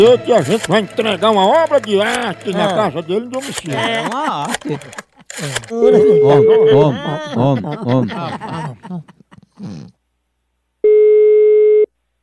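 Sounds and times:
laughter: 0.0s - 9.9s
speech: 0.0s - 10.0s
electronic telephone tone while a call is being placed: 5.7s - 6.9s, 10.9s - 11.9s.

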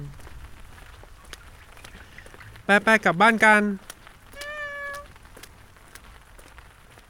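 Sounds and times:
speech: 2.7s - 3.9s
high thin kitten meow: 4.3s - 5.1s.

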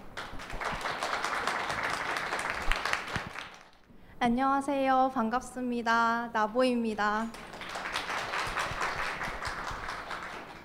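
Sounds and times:
audience applause welcoming a speaker: 0.2s - 3.8s, 7.4s - 10.6s
speech: 4.2s - 7.4s.

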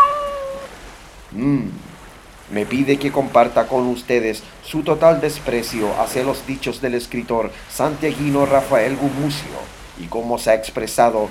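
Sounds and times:
cat meowing: 0.0s - 0.7s
speech: 1.4s - 1.8s, 2.5s - 11.2s.

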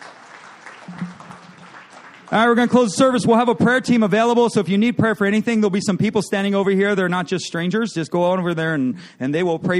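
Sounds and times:
crowd applause in a large room: 0.0s - 3.2s
speech: 2.3s - 9.7s.

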